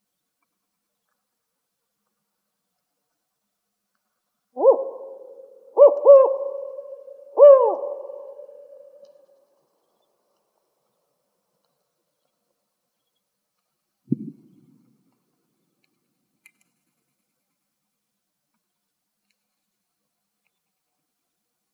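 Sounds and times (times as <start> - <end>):
spotted owl four-note hooting call in Arizona: 4.6 - 9.4.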